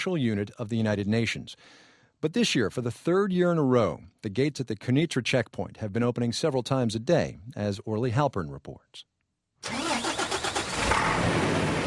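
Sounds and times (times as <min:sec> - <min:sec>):
speech: 0:00.0 - 0:09.8
truck engine cranking and rumbling at the Quneitra checkpoint gate in the Golan Heights: 0:09.6 - 0:11.8.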